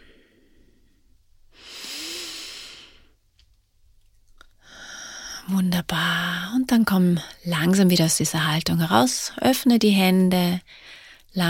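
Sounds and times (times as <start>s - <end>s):
deep yoga breathing: 0.0s - 3.2s, 4.6s - 5.5s
speech: 5.5s - 11.4s.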